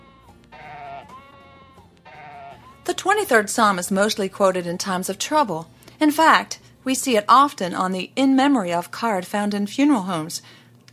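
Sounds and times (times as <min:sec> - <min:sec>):
sheep bleating: 0:00.0 - 0:03.0
speech: 0:02.9 - 0:10.6.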